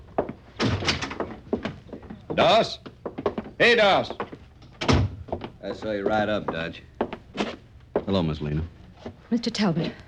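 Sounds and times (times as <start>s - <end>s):
door opening and shutting: 0.6s - 1.3s, 4.8s - 5.2s
speech: 2.4s - 2.9s, 3.6s - 4.2s, 5.6s - 7.5s, 8.1s - 10.0s.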